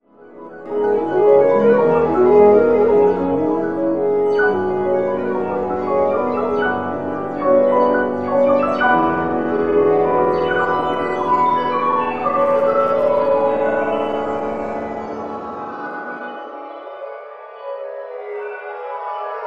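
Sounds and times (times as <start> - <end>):
tone: 0.6 - 16.6.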